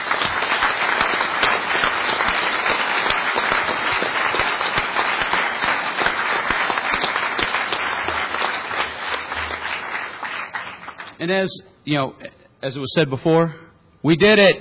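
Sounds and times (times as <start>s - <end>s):
large audience applause for volunteers: 0.0s - 11.2s
speech: 11.2s - 14.5s.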